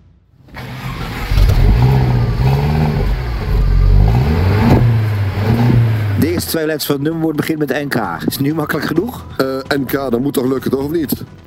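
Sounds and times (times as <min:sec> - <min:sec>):
Mercedes cabriolet engine starting and revving: 0:00.4 - 0:06.8
speech: 0:06.5 - 0:11.4.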